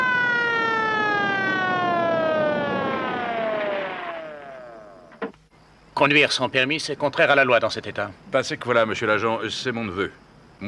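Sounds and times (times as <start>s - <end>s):
police car siren wailing: 0.0s - 5.2s
speech: 6.0s - 10.6s.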